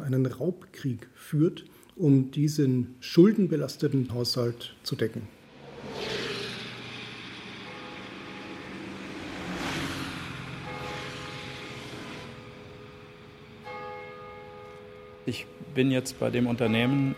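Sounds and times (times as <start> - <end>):
speech: 0.1 - 6.3, 15.3 - 17.1
car driving fast on a motorway: 5.5 - 13.6
faint tonal ringing: 6.5 - 17.1.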